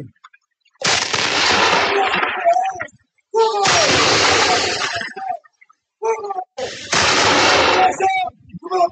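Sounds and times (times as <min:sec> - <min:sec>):
artillery battery firing a ceremonial salute: 0:00.8 - 0:02.7, 0:03.6 - 0:05.0, 0:06.7 - 0:08.2.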